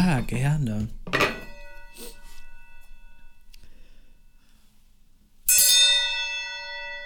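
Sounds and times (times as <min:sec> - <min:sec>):
speech: 0:00.2 - 0:01.0
gong struck with shimmering metallic tone: 0:01.3 - 0:03.5, 0:05.5 - 0:07.0.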